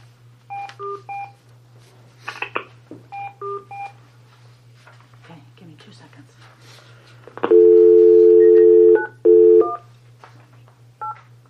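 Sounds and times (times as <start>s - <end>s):
steady low electrical hum: 0.0s - 11.4s
touch-tone phone keys dialed to join a teleconference: 3.1s - 3.9s, 7.5s - 9.8s.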